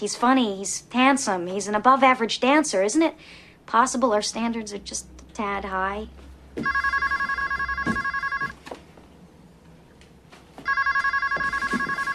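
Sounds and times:
speech: 0.0 - 7.1
faint noise: 0.0 - 12.1
telephone ringing with a bright warbling tone: 6.6 - 8.6, 10.6 - 12.1.

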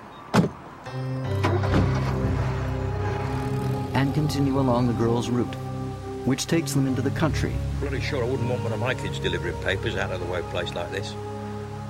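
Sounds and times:
car door shutting: 0.3 - 0.6, 1.3 - 3.8
speech: 0.9 - 1.4, 4.0 - 5.7, 6.3 - 11.3.

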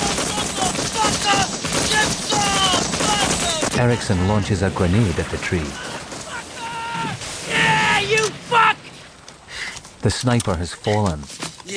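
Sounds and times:
rapid gunfire barrage aimed at a tree in a combat scene: 0.0 - 8.6
speech: 3.8 - 5.9, 10.0 - 11.7.

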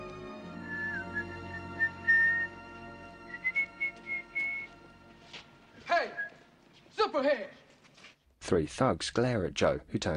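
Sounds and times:
person whistling a short melody: 0.6 - 2.6, 3.3 - 4.8
speech: 7.1 - 7.6, 8.5 - 10.1.

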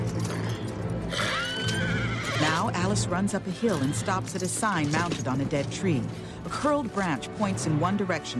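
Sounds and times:
black horse whinnying as a man yanks its reins: 0.2 - 2.7, 3.3 - 4.3
speech: 2.7 - 8.3.

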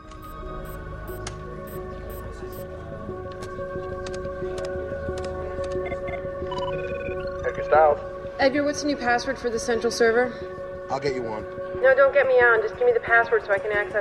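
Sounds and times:
video phone call ringing with layered electronic tones on a computer: 6.0 - 7.7
speech: 7.7 - 13.9.

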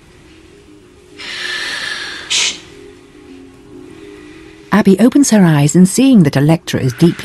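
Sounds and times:
person breathing noisily on purpose: 0.0 - 4.7
speech: 4.8 - 7.2.

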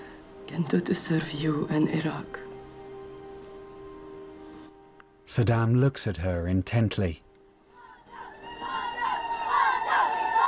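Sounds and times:
speech: 0.5 - 2.4, 5.4 - 7.2
large crowd praising and shouting in ancient streets outdoors: 7.8 - 10.4.

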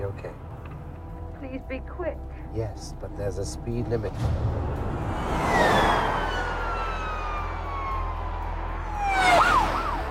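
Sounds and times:
speech: 0.0 - 0.5, 1.4 - 5.6
steady low rumble of traffic: 0.0 - 10.1
police car sirens wailing while speeding along the fast lane: 5.2 - 10.1.

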